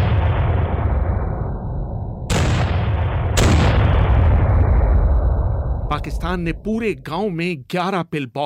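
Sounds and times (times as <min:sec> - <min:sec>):
heavy artillery fire: 0:00.0 - 0:06.5
sharp loud blasts: 0:00.0 - 0:07.0
speech: 0:06.0 - 0:08.4.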